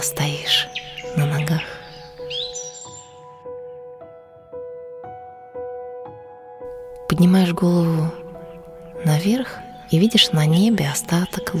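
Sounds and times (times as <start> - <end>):
speech: 0.0 - 0.6, 7.2 - 8.2, 9.2 - 11.5
bird chirping in the morning: 0.0 - 3.4, 7.6 - 11.5.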